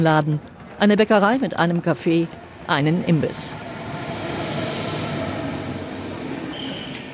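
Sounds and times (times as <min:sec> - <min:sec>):
speech: 0:00.0 - 0:03.6
dense rumble of rail noise on a busy train station platform: 0:01.6 - 0:07.1
activity on a train station platform: 0:01.8 - 0:07.1
high-pitched squeal at a train station platform: 0:03.4 - 0:07.1.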